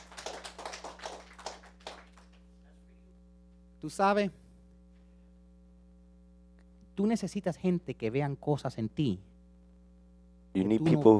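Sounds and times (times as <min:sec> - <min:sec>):
faint audience clapping during a church sermon: 0:00.0 - 0:02.6
low electrical hum: 0:00.0 - 0:11.1
speech: 0:03.8 - 0:04.4, 0:07.0 - 0:09.3, 0:10.6 - 0:11.1.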